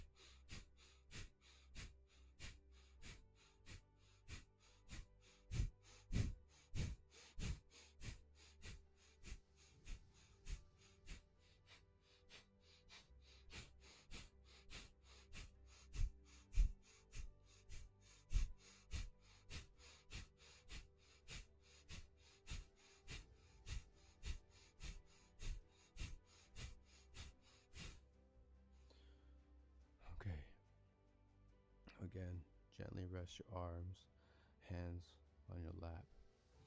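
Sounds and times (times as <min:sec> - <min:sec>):
rapid forceful breaths of a deep breathing exercise: 0:00.0 - 0:28.2
speech: 0:30.2 - 0:30.5, 0:32.0 - 0:36.2.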